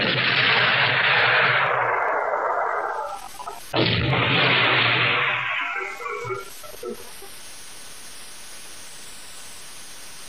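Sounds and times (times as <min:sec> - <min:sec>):
enemy artillery fire blasts: 0:00.0 - 0:06.6.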